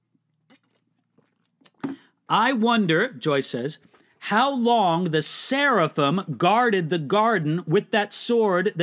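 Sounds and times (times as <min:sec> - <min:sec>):
sipping water: 0:00.2 - 0:02.3
speech: 0:02.3 - 0:08.8.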